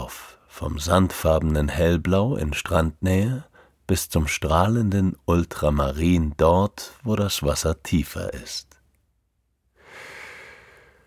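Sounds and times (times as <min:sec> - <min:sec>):
speech: 0:00.1 - 0:08.7
deep inhale: 0:09.8 - 0:11.0.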